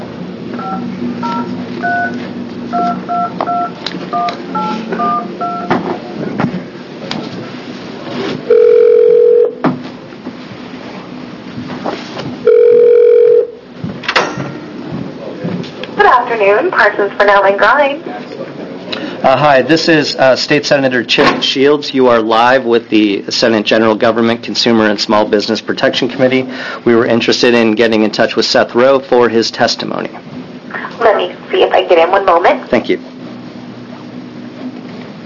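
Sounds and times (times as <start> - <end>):
long steady phone ringback tones: 0.6 - 5.7, 8.5 - 9.6, 12.4 - 13.6
touch-tone dialing beeps: 0.6 - 5.7
speech: 16.2 - 18.1, 19.2 - 30.2, 31.9 - 33.1
voice over a phone line: 30.9 - 32.9.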